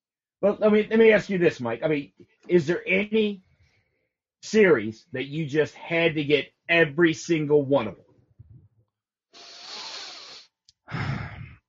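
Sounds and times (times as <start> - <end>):
speech: 0.4 - 3.5, 4.4 - 8.0
heavy breathing against the microphone: 9.4 - 11.6.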